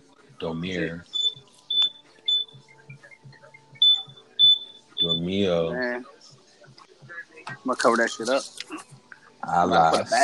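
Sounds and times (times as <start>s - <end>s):
speech: 0.4s - 1.2s, 5.1s - 6.1s, 7.5s - 8.7s, 9.5s - 10.2s
smoke detector beeping shrilly: 1.1s - 2.6s, 3.8s - 5.3s.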